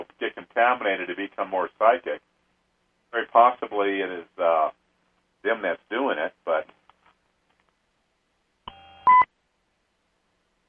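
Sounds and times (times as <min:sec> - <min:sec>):
speech: 0:00.6 - 0:02.3, 0:03.1 - 0:04.8, 0:05.4 - 0:06.8
electronic beep on a telephone line: 0:08.7 - 0:09.3.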